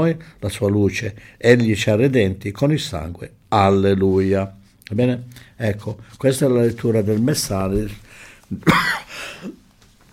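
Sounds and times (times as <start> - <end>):
speech: 0.0 - 9.6
person with a sore throat coughing: 8.6 - 10.1.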